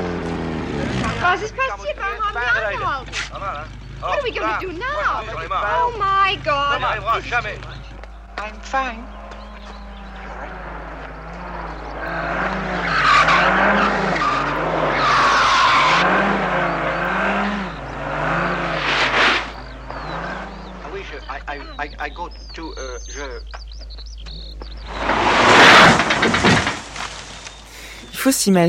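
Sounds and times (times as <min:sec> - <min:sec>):
car tires skidding and squealing in a film crash scene: 0:00.0 - 0:22.7, 0:23.3 - 0:27.8
speech: 0:01.3 - 0:07.8, 0:08.4 - 0:09.2, 0:21.8 - 0:23.6, 0:28.2 - 0:28.6
harsh loud broadband crash burst: 0:18.7 - 0:19.6, 0:24.9 - 0:27.4
choppy rattling noise: 0:24.2 - 0:27.8.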